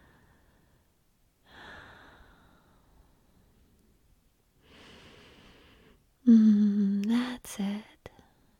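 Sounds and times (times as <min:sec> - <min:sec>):
slow deep breathing during a guided relaxation exercise: 0:00.0 - 0:04.0, 0:04.6 - 0:06.6.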